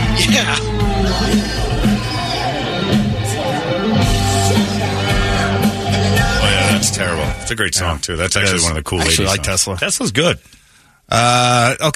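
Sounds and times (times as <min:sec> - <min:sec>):
concert crowd yelling: 0:00.0 - 0:07.0
phone-recorded live rock concert music with full band: 0:00.0 - 0:07.6
steady drums: 0:00.0 - 0:10.2
speech: 0:00.2 - 0:01.9, 0:07.0 - 0:11.9.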